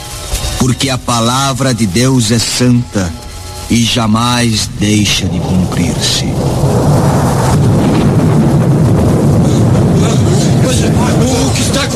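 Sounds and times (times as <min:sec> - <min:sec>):
speech: 0:00.6 - 0:07.1
strong storm wind with heavy low rumbling: 0:03.2 - 0:11.9.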